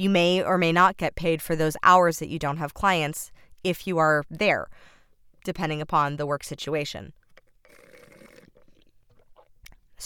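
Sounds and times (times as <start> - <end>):
speech: 0.0 - 7.2
mouth and swallowing noises: 7.2 - 10.0
slurping a drink through a broken straw: 7.3 - 9.6.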